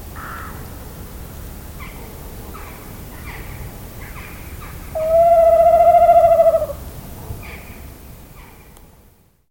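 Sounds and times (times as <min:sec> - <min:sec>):
tawny owl hooting: 0:05.0 - 0:06.8.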